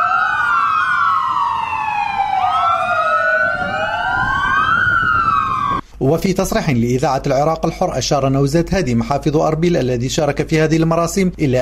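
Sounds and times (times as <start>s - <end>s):
several air raid warning sirens wailing together: 0.0s - 5.9s
speech: 6.0s - 11.6s.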